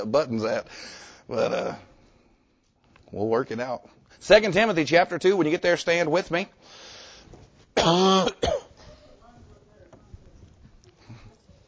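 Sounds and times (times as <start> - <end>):
speech: 0.0 - 1.9, 3.1 - 6.8, 7.8 - 8.6
person rasping cough or harsh throat clearing: 7.8 - 9.2.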